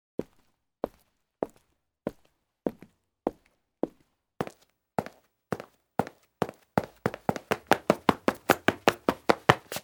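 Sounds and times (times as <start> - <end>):
man's shoe footsteps: 0.2 - 9.8.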